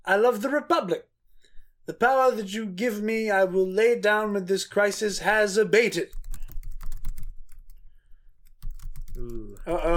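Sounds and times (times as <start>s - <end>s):
speech: 0.1s - 1.1s, 1.9s - 6.2s, 9.2s - 9.9s
typing on a computer keyboard: 6.1s - 7.8s, 8.4s - 9.7s.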